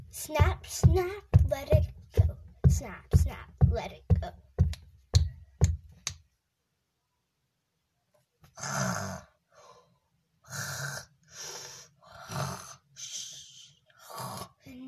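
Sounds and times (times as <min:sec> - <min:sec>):
speech: 0:00.2 - 0:01.9, 0:02.8 - 0:04.5, 0:08.6 - 0:09.3
person snoring: 0:08.5 - 0:09.7, 0:10.4 - 0:14.6.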